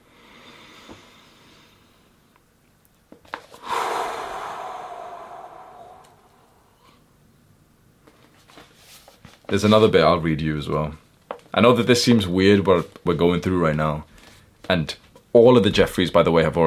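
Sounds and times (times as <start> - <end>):
slow deep breathing in and out during a guided breathing exercise: 0.0 - 2.2, 3.6 - 7.1
speech: 9.5 - 11.0, 11.6 - 14.1, 14.7 - 16.6.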